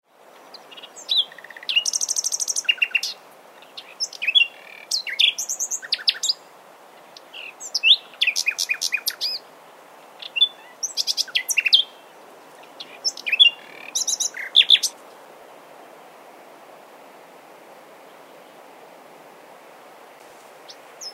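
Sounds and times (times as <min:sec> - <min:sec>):
common nightingale Luscinia megarhynchos singing: 0:00.3 - 0:09.4, 0:10.2 - 0:15.1, 0:20.6 - 0:21.1.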